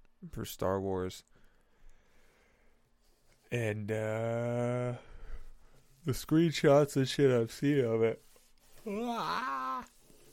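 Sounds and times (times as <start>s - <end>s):
speech: 0.2s - 1.4s, 3.5s - 5.1s, 6.0s - 8.2s, 8.8s - 9.9s
person yawning: 8.8s - 10.0s.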